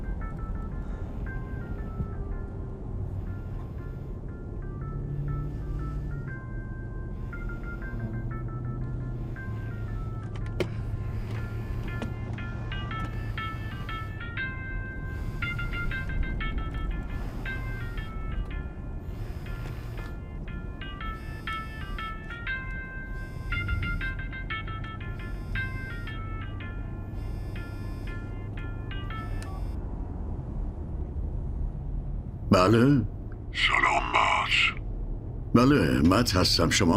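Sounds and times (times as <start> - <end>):
low steady hum: 0.0 - 36.9
mobile phone ringtone playing a bright electronic melody: 3.2 - 29.8
speech: 32.6 - 33.9, 35.6 - 36.9.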